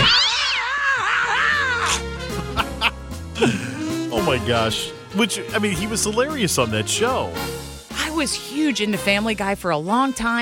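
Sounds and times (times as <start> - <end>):
cats yowling as they are fired from a cat launcher: 0.0 - 2.0
laughter: 2.3 - 4.0
speech: 3.4 - 3.6, 4.2 - 10.4.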